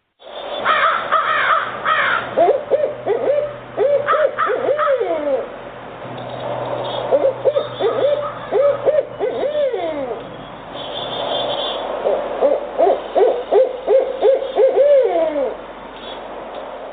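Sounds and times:
barred owls hooting: 0:00.6 - 0:05.6, 0:07.0 - 0:10.3, 0:11.5 - 0:15.6.

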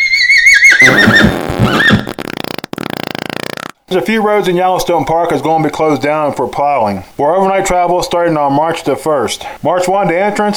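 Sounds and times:
horse whinnying: 0:00.0 - 0:02.2
horse snorting softly: 0:00.7 - 0:03.8
speech: 0:03.9 - 0:10.5.

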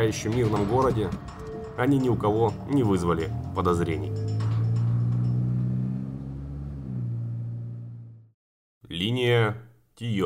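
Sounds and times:
speech: 0:00.0 - 0:04.3, 0:09.0 - 0:10.2
car engine revving as the car pulls away: 0:02.0 - 0:08.3.

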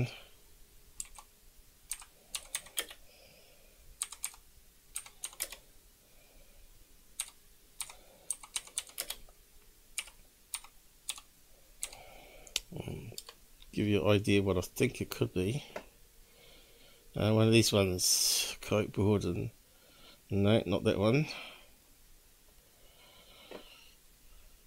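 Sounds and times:
speech: 0:00.0 - 0:00.2, 0:13.8 - 0:15.8, 0:17.2 - 0:19.6, 0:20.3 - 0:21.5
typing on a computer keyboard: 0:01.0 - 0:01.3, 0:01.9 - 0:03.0, 0:04.0 - 0:05.6, 0:07.2 - 0:09.2, 0:10.0 - 0:12.0.

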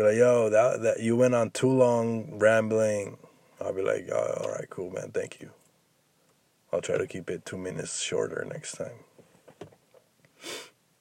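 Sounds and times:
speech: 0:00.0 - 0:05.6, 0:06.7 - 0:09.1
person sniffling: 0:10.4 - 0:10.8.

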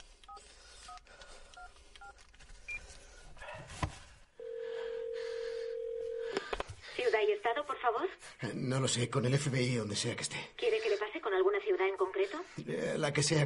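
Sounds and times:
long steady mobile phone tone: 0:04.4 - 0:06.5
speech: 0:07.4 - 0:10.7, 0:11.4 - 0:13.4.

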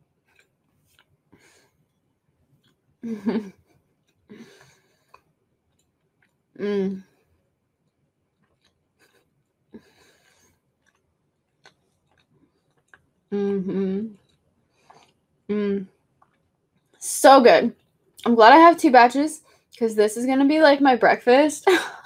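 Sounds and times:
crunchy chewing of a pumpkin spice scone made with oats: 0:00.2 - 0:02.8, 0:04.0 - 0:13.3, 0:14.1 - 0:17.0
speech: 0:03.0 - 0:03.6, 0:17.3 - 0:22.0.

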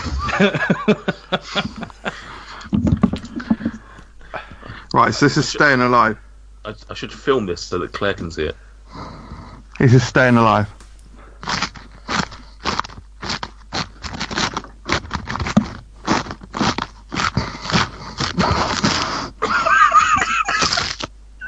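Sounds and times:
laughter: 0:00.0 - 0:03.8, 0:19.4 - 0:21.4
speech: 0:00.4 - 0:01.9, 0:05.0 - 0:08.6, 0:09.8 - 0:10.8
man chewing crisp iceberg lettuce into a microphone: 0:11.4 - 0:19.4, 0:20.5 - 0:21.1.

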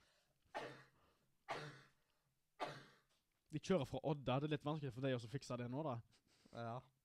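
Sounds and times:
coughs turned away from the microphone: 0:00.6 - 0:02.0, 0:02.6 - 0:03.2
speech: 0:03.5 - 0:07.0.

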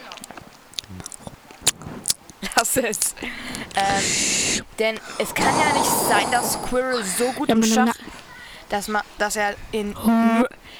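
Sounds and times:
wet mouth noises of someone eating: 0:00.0 - 0:07.3
chewing squelches: 0:00.0 - 0:07.4
sharper gulping swallows: 0:00.0 - 0:07.5
speech: 0:02.6 - 0:08.0, 0:08.7 - 0:10.5.

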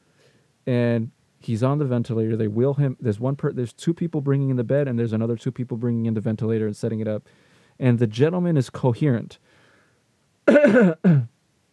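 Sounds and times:
speech: 0:00.7 - 0:09.5, 0:10.5 - 0:11.3
person clearing throat: 0:10.5 - 0:11.3.

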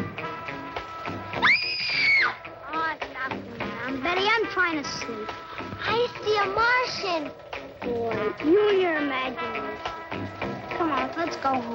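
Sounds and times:
indistinct voices talking: 0:00.0 - 0:11.7
child letting out a shrill high-pitched scream: 0:01.4 - 0:02.8
speech: 0:04.6 - 0:09.9, 0:10.9 - 0:11.7.

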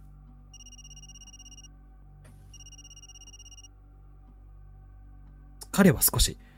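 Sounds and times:
man's mobile phone ringing with a trilling electronic tone: 0:00.6 - 0:01.7, 0:02.5 - 0:03.7
speech: 0:05.8 - 0:06.5.

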